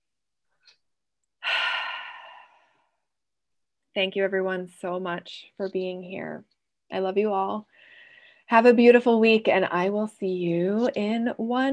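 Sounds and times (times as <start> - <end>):
long breathy exhale: 1.4 - 2.9
speech: 4.0 - 7.9, 8.5 - 11.7.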